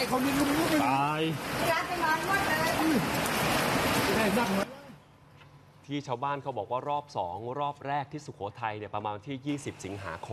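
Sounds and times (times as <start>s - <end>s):
speech: 0.0s - 3.4s, 4.1s - 4.7s, 5.9s - 10.3s
fast-flowing flash floodwater pouring down from the hills after heavy rain in Sukhothai, Thailand: 0.0s - 4.7s.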